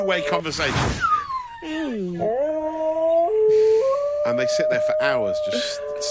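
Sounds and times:
speech: 0.0s - 2.6s, 4.2s - 6.1s
two dogs howling over a video call: 2.2s - 6.1s.

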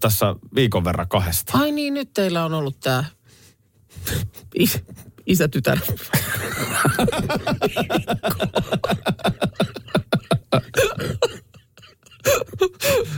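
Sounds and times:
speech: 0.0s - 3.2s, 3.9s - 10.9s
laughter: 6.0s - 11.3s
dog making a rapid rhythmic hacking cough: 10.7s - 12.4s.

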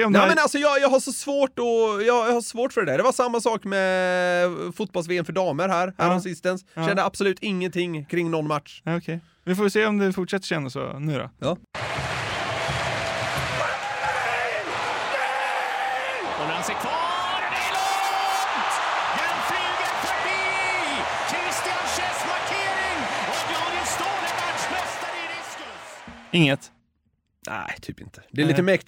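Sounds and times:
commentator talking over crowd noise: 0.0s - 0.8s, 6.0s - 7.1s, 16.4s - 26.7s, 28.3s - 28.8s
speech: 0.0s - 12.2s, 26.3s - 26.8s, 27.4s - 28.8s
large crowd roaring in a big arena: 11.8s - 26.4s.

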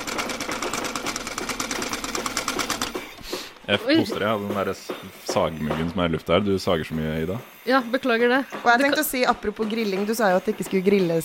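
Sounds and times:
sewing machine stitching: 0.0s - 3.3s
speech: 3.7s - 11.2s.

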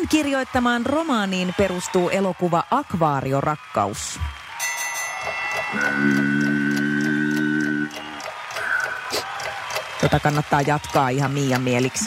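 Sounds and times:
speech: 0.1s - 4.4s, 5.2s - 6.4s, 10.0s - 12.0s
quiz timer ticking like a clock: 4.9s - 12.0s
held electronic tone: 5.5s - 8.9s.

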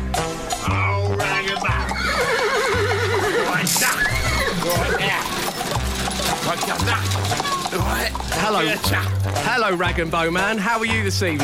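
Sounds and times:
horse hooves clip-clopping: 0.1s - 11.4s
horse whinnying: 0.8s - 9.6s
speech: 7.9s - 11.4s.

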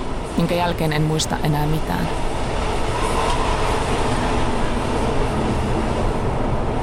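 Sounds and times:
moving train rumbling heard inside a freight car: 0.0s - 6.8s
speech: 0.4s - 2.4s.

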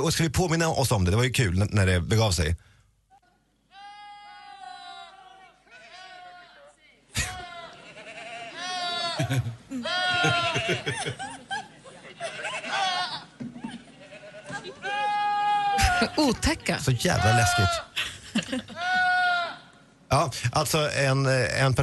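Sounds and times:
speech: 0.0s - 2.7s, 9.2s - 11.4s, 16.0s - 19.0s, 20.1s - 21.8s
laughter: 7.1s - 19.1s
goats screaming like human yells: 7.2s - 10.9s, 12.2s - 13.3s, 14.0s - 16.2s, 16.9s - 17.9s, 18.7s - 19.7s.

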